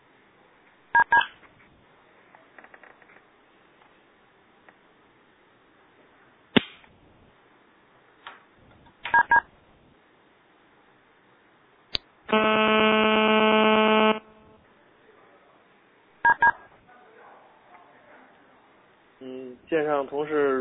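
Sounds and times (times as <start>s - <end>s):
telephone keypad DTMF beeps: 1.0s - 1.3s, 9.1s - 9.4s, 16.3s - 16.6s
buzzy electronic tone: 12.3s - 14.6s
speech: 19.7s - 20.6s.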